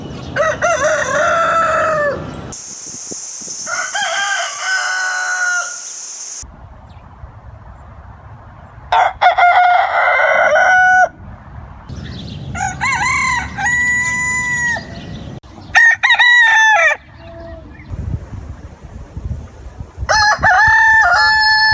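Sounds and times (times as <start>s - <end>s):
male domestic chicken rooster crowing: 0.4s - 2.4s, 3.6s - 6.4s, 8.9s - 11.1s, 12.5s - 15.1s, 15.8s - 17.1s, 20.1s - 21.7s.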